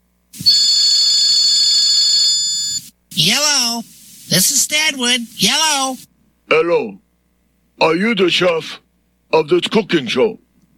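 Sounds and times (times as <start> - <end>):
telephone ringing: 0.4 - 2.8
speech: 3.2 - 7.0, 7.8 - 10.4.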